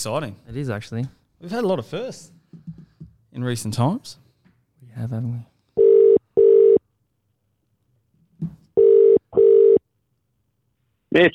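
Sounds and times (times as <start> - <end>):
speech: 0.0 - 2.7, 3.4 - 4.2, 5.0 - 5.5, 11.1 - 11.3
outgoing phone call double-beep ring tone: 5.8 - 6.8, 8.8 - 9.8.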